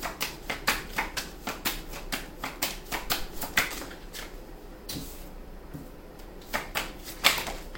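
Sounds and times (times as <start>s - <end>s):
tarot cards being shuffled and drawn: 0.1s - 5.0s, 6.4s - 7.7s.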